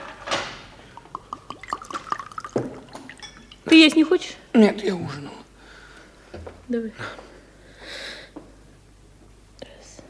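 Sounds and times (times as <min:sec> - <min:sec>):
water poured from a carafe into a cup: 0:00.8 - 0:03.5
water splash: 0:01.0 - 0:03.2
speech: 0:03.7 - 0:05.4, 0:06.4 - 0:07.3.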